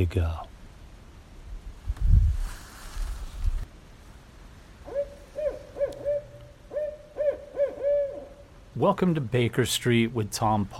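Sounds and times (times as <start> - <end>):
speech: 0.0 - 0.4, 8.8 - 10.7
rustling: 1.8 - 4.3
Barred owl hooting at night in a driveway in New Hampshire: 4.8 - 8.6.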